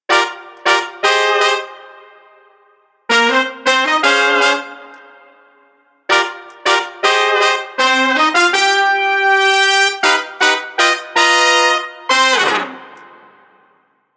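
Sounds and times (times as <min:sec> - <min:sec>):
horn: 0:00.1 - 0:13.9.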